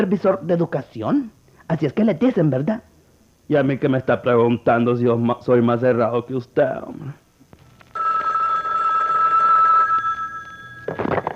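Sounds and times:
speech: 0.0s - 2.9s, 3.5s - 7.2s
telephone ringing with an electronic bell tone: 7.6s - 11.3s.

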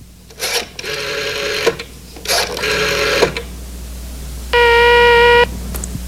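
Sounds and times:
public payphone dial whirring and clicking: 0.3s - 3.5s
steady electronic phone tone: 4.6s - 5.5s.

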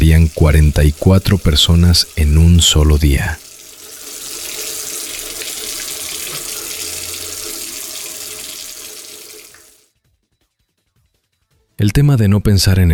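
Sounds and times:
water running from a tap: 0.0s - 9.9s
speech: 0.1s - 3.4s, 11.8s - 12.9s.

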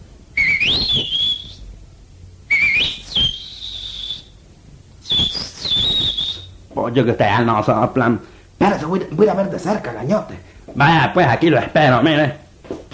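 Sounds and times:
loud human whistles to call someone: 0.3s - 1.7s, 2.5s - 4.4s, 5.0s - 6.6s
speech: 1.0s - 1.2s, 6.8s - 12.4s.

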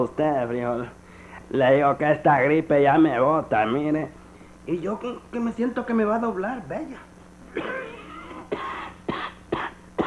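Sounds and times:
speech: 0.0s - 8.6s
harsh barking cough: 7.5s - 10.0s.

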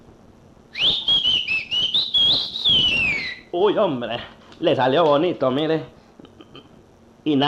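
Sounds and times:
person whistling loudly to call someone: 0.7s - 3.5s
speech: 3.6s - 6.0s, 7.2s - 7.4s.

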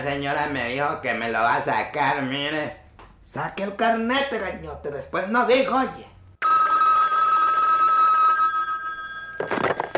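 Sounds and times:
speech: 0.0s - 6.1s
electronic telephone ringing in a busy office: 6.4s - 9.9s.

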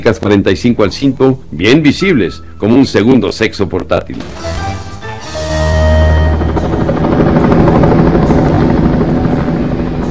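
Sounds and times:
speech: 0.0s - 4.6s
helicopter flying overhead: 4.2s - 10.1s.

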